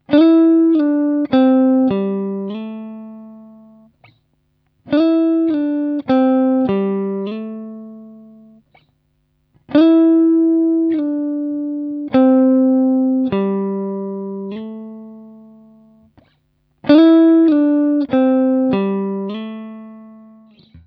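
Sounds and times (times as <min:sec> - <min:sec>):
sliding guitar lick: 0:00.1 - 0:04.2, 0:04.9 - 0:08.9, 0:09.7 - 0:20.8.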